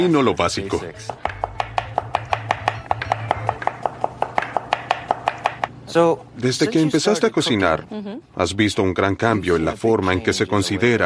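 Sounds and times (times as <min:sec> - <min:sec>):
speech: 0:00.0 - 0:01.4, 0:06.0 - 0:11.0
low hum: 0:00.0 - 0:11.0
knife chopping food very finely on a cutting board during a cooking lesson: 0:01.1 - 0:05.7.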